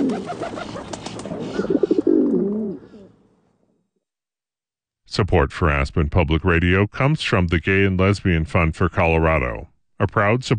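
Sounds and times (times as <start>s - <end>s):
pigeon cooing: 0.0s - 3.2s
speech: 5.2s - 10.5s.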